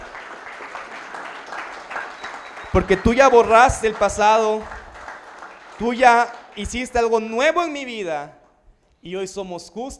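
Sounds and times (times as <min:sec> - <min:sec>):
church audience applauding: 0:00.0 - 0:07.5
speech: 0:02.7 - 0:04.8, 0:05.8 - 0:08.4, 0:09.0 - 0:09.9.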